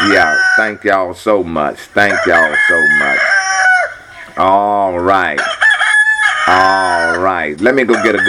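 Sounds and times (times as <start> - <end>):
rooster crowing: 0.0 - 0.8, 2.0 - 4.5, 5.3 - 8.2
speech: 0.1 - 3.7, 4.4 - 5.6, 6.4 - 8.2.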